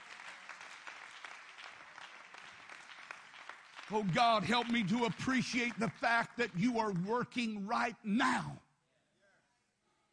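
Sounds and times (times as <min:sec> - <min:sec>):
audience clapping: 0:00.0 - 0:07.9
speech: 0:03.9 - 0:08.6.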